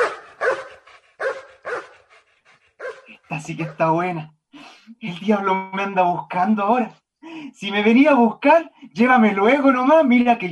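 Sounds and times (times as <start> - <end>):
dogs howling in short yelping bursts: 0.0 - 2.2, 2.8 - 3.9
speech: 3.3 - 10.5.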